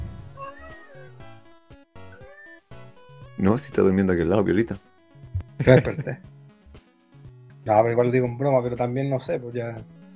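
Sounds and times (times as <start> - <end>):
cat meowing: 0.0 - 1.2
speech: 3.4 - 4.9, 5.6 - 6.3, 7.6 - 10.0.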